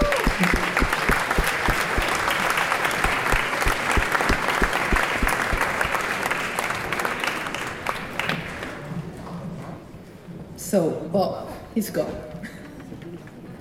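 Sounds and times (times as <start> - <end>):
faint murmuring voices: 0.0 - 6.2
audience applause: 0.0 - 8.8
speech: 11.8 - 12.3.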